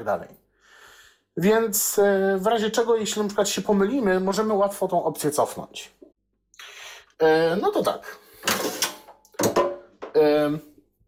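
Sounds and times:
speech: 0:00.0 - 0:00.4, 0:01.4 - 0:08.6, 0:10.2 - 0:10.7
drawer being pulled out with scraping clunks and rattles: 0:08.4 - 0:09.1.

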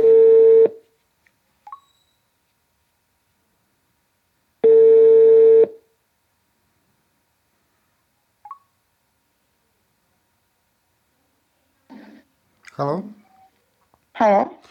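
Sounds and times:
outgoing phone call ringback tone via voice command: 0:00.0 - 0:00.8, 0:04.6 - 0:05.8
speech: 0:12.8 - 0:13.2, 0:14.2 - 0:14.6.

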